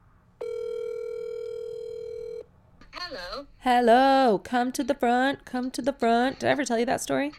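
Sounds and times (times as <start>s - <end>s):
faint low hum: 0.0s - 7.3s
telephone dial tone beep: 0.4s - 2.4s
speech: 3.1s - 7.3s.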